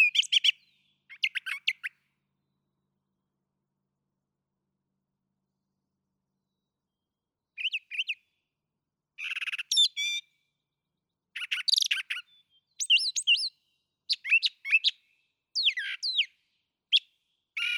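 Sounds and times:
brown thrasher song: 0:00.0 - 0:03.1, 0:06.3 - 0:08.6, 0:09.2 - 0:17.7.

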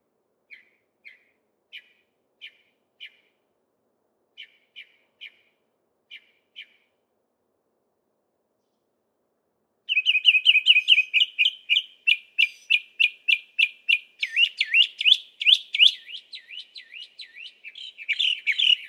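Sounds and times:
Northern mockingbird song of chirps and slurred notes: 0:09.9 - 0:18.8.

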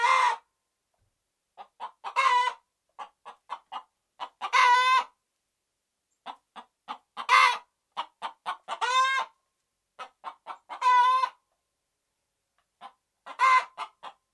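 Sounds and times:
Red junglefowl cackling and clucking: 0:00.0 - 0:00.5, 0:01.6 - 0:05.2, 0:06.2 - 0:09.4, 0:10.0 - 0:11.4, 0:12.7 - 0:14.3.

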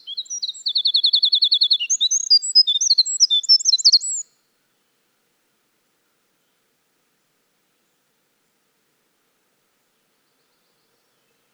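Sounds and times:
winter wren song: 0:00.0 - 0:04.3.

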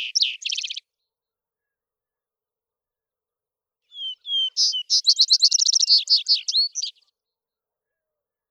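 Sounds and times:
vesper sparrow singing: 0:00.0 - 0:01.0, 0:03.9 - 0:07.1.

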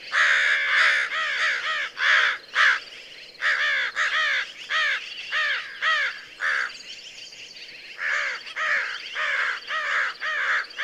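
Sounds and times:
American crow cawing: 0:00.1 - 0:02.8, 0:03.4 - 0:06.8, 0:08.0 - 0:10.8.

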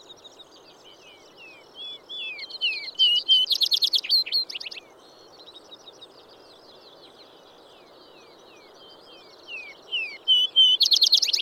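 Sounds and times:
Vesper sparrow song: 0:00.0 - 0:11.4.

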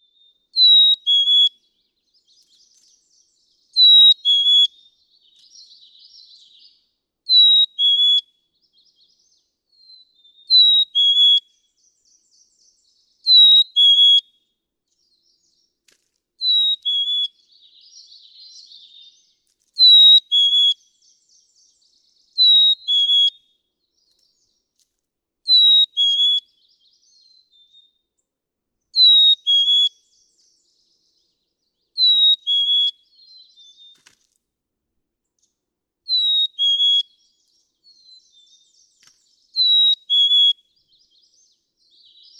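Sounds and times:
Black-capped Chickadee calling: 0:00.0 - 0:11.6, 0:12.2 - 0:14.3, 0:16.4 - 0:23.4, 0:25.5 - 0:28.0, 0:29.0 - 0:31.3, 0:31.9 - 0:34.2, 0:36.1 - 0:42.3.

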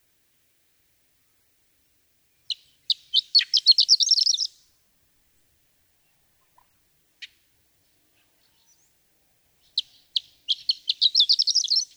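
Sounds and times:
horned lark singing: 0:02.5 - 0:04.5, 0:09.6 - 0:11.9.

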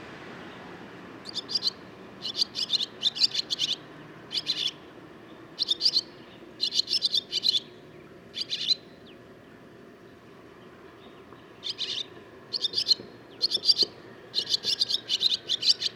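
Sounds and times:
barn swallow song of grating twitters and chirps: 0:01.2 - 0:04.8, 0:05.6 - 0:07.7, 0:08.3 - 0:09.2, 0:11.6 - 0:15.9.

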